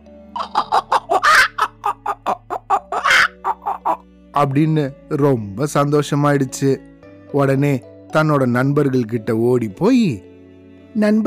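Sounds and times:
person imitating hen clucking and squawking: 0:00.4 - 0:04.0
speech: 0:04.4 - 0:10.3, 0:10.9 - 0:11.2.

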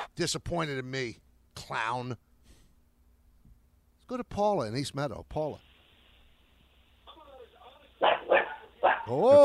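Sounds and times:
speech: 0:00.2 - 0:02.3, 0:04.1 - 0:05.7, 0:08.8 - 0:09.4
dog barking in the background of a radio caller: 0:08.0 - 0:09.4.

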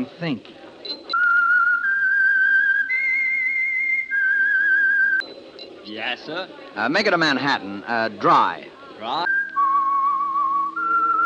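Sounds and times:
speech: 0:00.0 - 0:01.0, 0:05.9 - 0:09.2
person whistling a slow melody: 0:01.2 - 0:05.2, 0:09.3 - 0:11.2.

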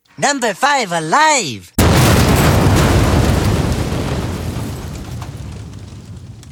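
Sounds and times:
speech: 0:00.2 - 0:01.7
deep explosion boom with low-end rumble: 0:01.8 - 0:06.4.

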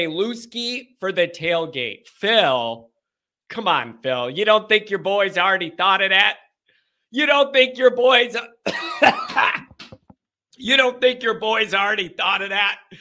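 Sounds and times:
speech: 0:00.0 - 0:02.9, 0:03.5 - 0:06.4, 0:07.1 - 0:09.7, 0:10.6 - 0:13.0
coughing and throat clearing: 0:08.6 - 0:10.1.

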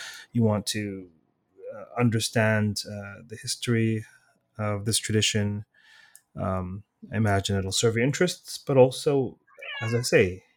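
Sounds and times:
speech: 0:00.3 - 0:10.5
cat meowing: 0:09.5 - 0:10.3.

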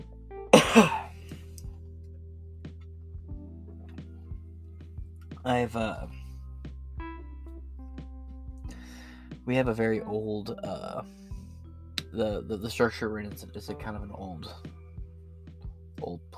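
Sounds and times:
person coughing from a dry throat: 0:00.6 - 0:01.2
speech: 0:00.7 - 0:01.0, 0:05.4 - 0:06.2, 0:09.5 - 0:11.2, 0:12.2 - 0:14.7, 0:16.0 - 0:16.3.

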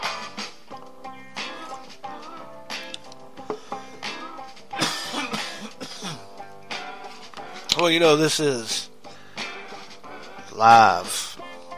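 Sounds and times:
person coughing in a choking fit after swallowing wrong: 0:04.8 - 0:06.3
throat clearing: 0:04.8 - 0:06.3
speech: 0:07.8 - 0:08.9, 0:10.6 - 0:11.2.

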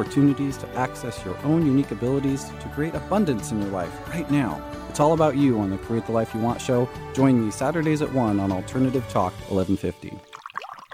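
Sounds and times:
speech: 0:00.0 - 0:10.3
tap water running: 0:10.2 - 0:10.9.

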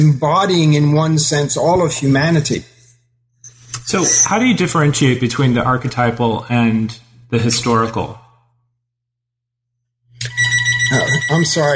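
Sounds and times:
speech: 0:00.0 - 0:02.7, 0:03.9 - 0:08.2, 0:10.9 - 0:11.7
telephone ringing: 0:10.2 - 0:11.7.

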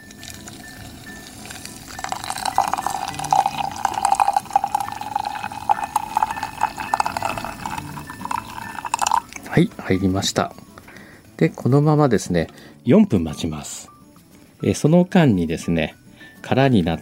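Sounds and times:
hot water pouring into a glass server: 0:00.0 - 0:09.5
speech: 0:09.6 - 0:10.6, 0:11.4 - 0:13.9, 0:14.6 - 0:17.0.

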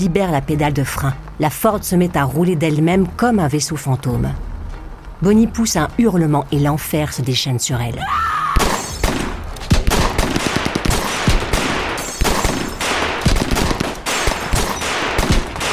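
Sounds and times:
speech: 0:00.0 - 0:04.5, 0:05.2 - 0:08.5
dense gunfire from six men firing together in a 1934 roadside ambush: 0:08.6 - 0:15.7.

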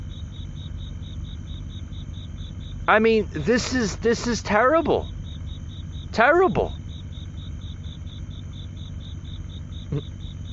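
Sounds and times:
crickets chirping outside an open window: 0:00.0 - 0:10.5
low ambient hum: 0:00.0 - 0:10.5
speech: 0:02.9 - 0:05.2, 0:06.2 - 0:06.8, 0:09.9 - 0:10.1.

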